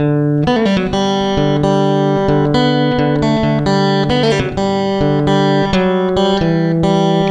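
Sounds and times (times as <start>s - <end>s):
guitar: 0.0s - 7.2s.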